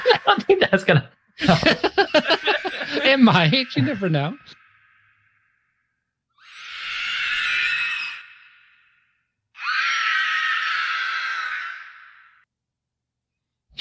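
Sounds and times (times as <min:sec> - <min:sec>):
laughter: 0:00.0 - 0:04.5
speech: 0:00.4 - 0:01.9, 0:03.2 - 0:04.6
shrill raspy screams: 0:01.9 - 0:12.5.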